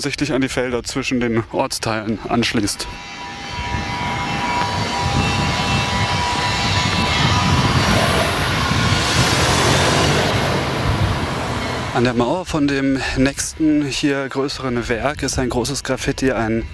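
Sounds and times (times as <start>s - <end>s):
speech: 0.0s - 3.3s, 12.0s - 16.7s
car driving past on a new road through an industrial area: 3.3s - 12.2s.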